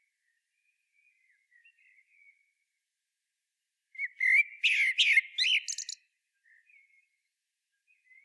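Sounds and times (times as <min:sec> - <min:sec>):
common blackbird singing fluted whistled phrase: 0:04.0 - 0:06.0.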